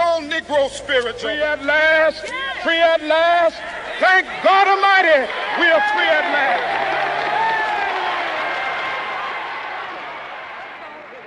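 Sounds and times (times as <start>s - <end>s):
speech: 0.4s - 6.8s
large crowd cheering and applauding: 3.8s - 11.2s.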